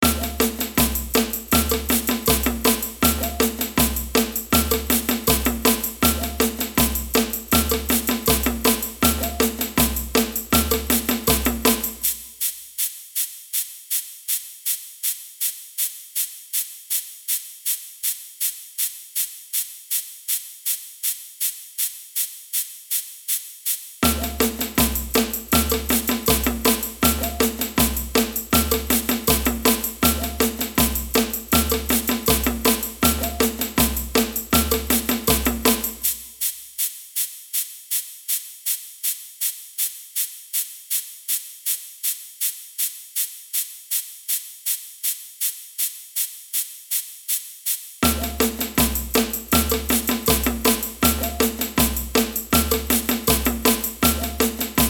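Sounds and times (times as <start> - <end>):
samba band playing: 0.0 - 12.2, 24.0 - 36.2, 48.0 - 54.8
ganza shaker in samba band: 0.0 - 54.8.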